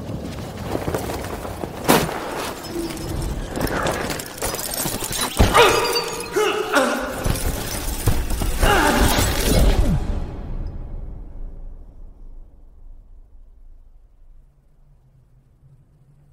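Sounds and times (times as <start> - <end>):
ice cracking and shattering: 0.9 - 10.0
ice fragments clattering and tumbling: 1.9 - 9.9.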